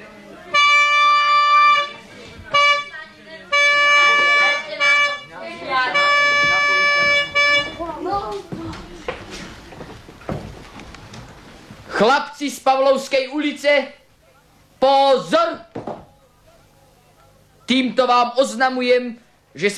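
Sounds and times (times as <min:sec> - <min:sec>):
trumpet call signalling everyone to assemble: 0:00.5 - 0:07.9
speech: 0:12.0 - 0:14.0, 0:14.8 - 0:15.6, 0:17.7 - 0:19.7.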